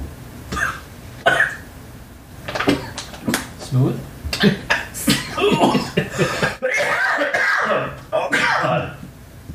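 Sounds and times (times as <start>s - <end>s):
person coughing after drinking: 0.5s - 1.6s, 4.4s - 9.0s
raspy throat-clearing: 0.5s - 1.6s, 4.3s - 8.9s
speech: 3.7s - 4.8s.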